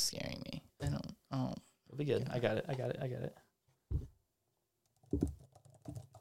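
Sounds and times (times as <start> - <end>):
speech: 0.0 - 0.3, 1.3 - 3.5, 5.1 - 5.4
typing on a thin raised laptop keyboard: 4.9 - 6.2.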